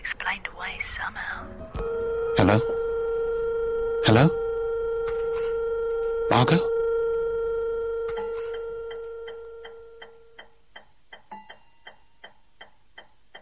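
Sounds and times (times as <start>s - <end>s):
speech: 0.3s - 2.8s, 4.0s - 4.4s
sustained electronic tone: 1.7s - 10.4s
clock ticking: 8.1s - 13.3s.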